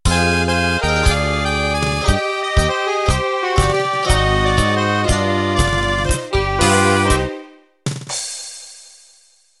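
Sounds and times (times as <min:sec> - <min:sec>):
tango music intro: 0:00.1 - 0:07.5.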